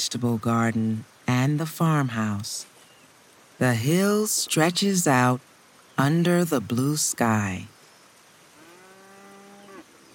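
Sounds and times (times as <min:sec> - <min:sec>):
speech: 0:00.1 - 0:02.7, 0:03.6 - 0:07.8
cow mooing: 0:08.6 - 0:09.8.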